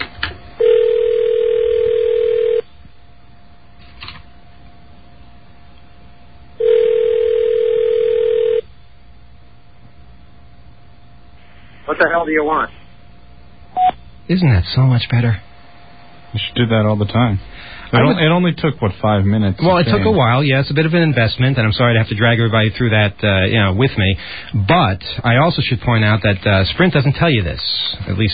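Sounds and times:
phone line ringing heard through the receiver: 0:00.6 - 0:02.7, 0:06.6 - 0:08.6
speech: 0:12.0 - 0:12.8, 0:14.3 - 0:15.4, 0:16.3 - 0:28.3.

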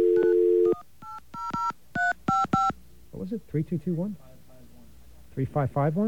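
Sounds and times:
telephone dial tone: 0:00.0 - 0:00.8
telephone keypad tones as a number is dialed: 0:00.0 - 0:02.8
speech: 0:03.3 - 0:04.3, 0:05.4 - 0:06.0.

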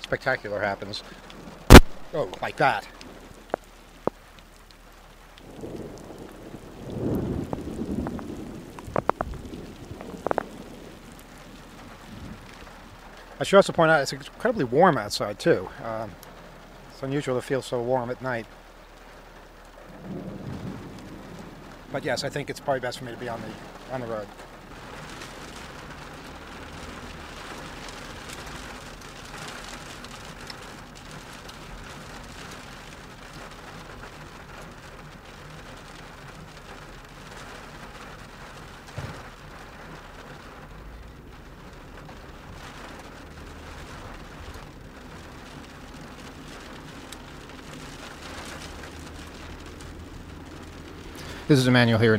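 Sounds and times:
steady rain falling at night: 0:00.0 - 0:52.1
speech: 0:00.1 - 0:01.4, 0:02.1 - 0:03.0, 0:13.4 - 0:16.3, 0:17.0 - 0:18.6, 0:21.9 - 0:24.5, 0:51.5 - 0:52.1
low thud: 0:01.7 - 0:02.2, 0:38.9 - 0:39.3.

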